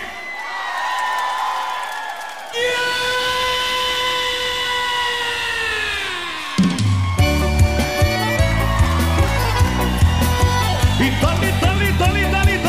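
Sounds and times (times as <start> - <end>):
live concert audience in Porto Alegre shouting and cheering: 0.0 - 12.6
band playing a bouncy rhythmic chamamé tune: 7.2 - 12.6.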